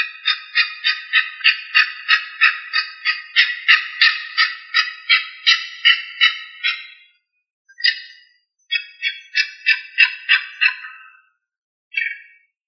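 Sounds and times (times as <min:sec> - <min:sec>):
bird harsh chirps: 0:00.0 - 0:12.6.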